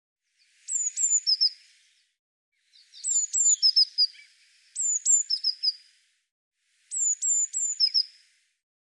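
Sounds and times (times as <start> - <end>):
Eurasian blue tit giving thin high notes and buzzy trill: 0.7 - 1.6, 3.0 - 5.8, 6.9 - 8.1.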